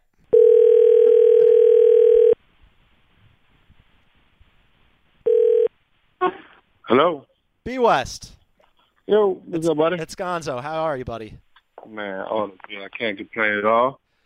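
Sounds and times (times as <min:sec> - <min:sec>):
telephone dial tone while a phone call is being placed: 0:00.3 - 0:02.4, 0:05.3 - 0:05.7
speech: 0:07.0 - 0:08.4, 0:09.1 - 0:14.0.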